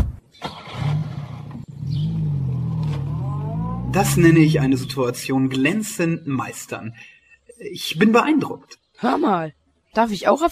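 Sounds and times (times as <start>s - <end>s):
car engine starting and revving: 0.4s - 6.0s
car driving off with a steady low drone: 0.4s - 6.7s
speech: 3.9s - 10.5s.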